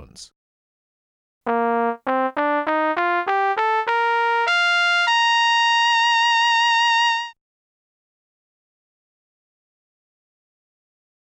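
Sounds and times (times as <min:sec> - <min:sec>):
wavetable synthesized trumpet: 0:01.5 - 0:07.4.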